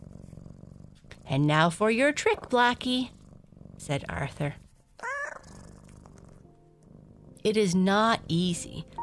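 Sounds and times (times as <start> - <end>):
cat purring: 0.0 - 9.0
speech: 1.3 - 3.2, 3.8 - 4.6, 7.4 - 9.0
cat meowing: 5.0 - 5.5.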